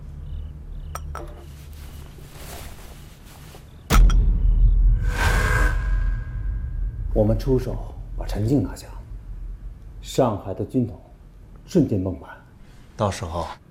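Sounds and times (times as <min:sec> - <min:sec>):
glasses clinking in a toast: 0:00.8 - 0:01.5
speech: 0:01.2 - 0:01.6, 0:07.2 - 0:09.0, 0:10.1 - 0:11.1, 0:11.7 - 0:12.4, 0:13.0 - 0:13.6
rumbling noisy bustle: 0:04.0 - 0:12.1.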